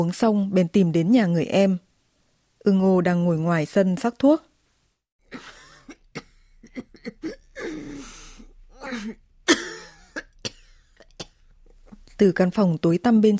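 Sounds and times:
speech: 0.0s - 1.8s, 2.6s - 4.5s, 5.3s - 5.5s, 12.2s - 13.3s
woman giving harsh racking coughs: 5.3s - 8.1s, 8.8s - 11.5s
woman's wheezy gasps: 7.6s - 9.1s.

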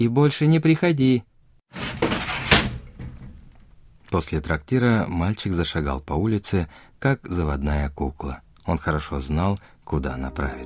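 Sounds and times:
speech: 0.0s - 2.1s, 4.1s - 10.6s
door creaking as a woman pushes it shut: 1.7s - 3.8s.

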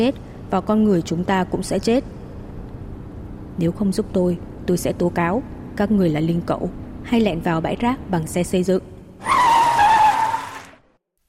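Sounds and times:
speech: 0.0s - 2.2s, 3.6s - 9.4s
car braking hard with tires skidding: 9.2s - 10.9s.

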